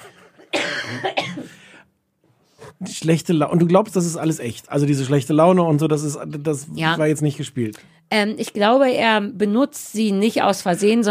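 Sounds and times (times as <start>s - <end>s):
harsh raspy smoker's cough: 0.0s - 1.7s
quieter throaty breaths: 1.4s - 2.8s
speech: 2.8s - 11.0s.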